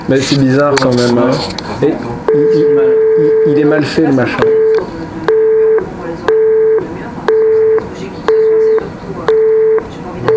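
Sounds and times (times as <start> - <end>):
speech: 0.1 - 4.6
telephone busy tone after the other party hangs up: 2.3 - 10.3.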